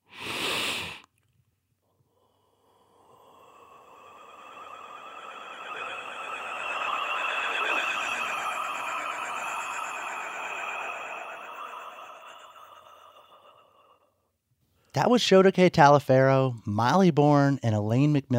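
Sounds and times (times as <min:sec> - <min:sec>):
warbling overtone breath vocal technique: 0:01.9 - 0:14.3
burst of noise: 0:02.6 - 0:13.9
speech: 0:15.0 - 0:18.3.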